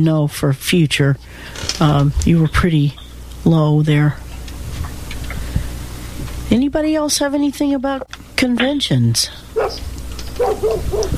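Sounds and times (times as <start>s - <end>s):
speech: 0.0s - 4.2s, 6.5s - 11.1s
low hum: 0.0s - 11.1s
dog barking: 9.6s - 11.1s.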